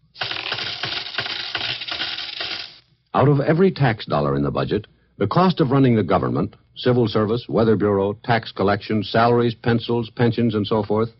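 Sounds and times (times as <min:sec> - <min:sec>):
seven cents of coins dropping: 0:00.0 - 0:02.8
speech: 0:03.2 - 0:11.1.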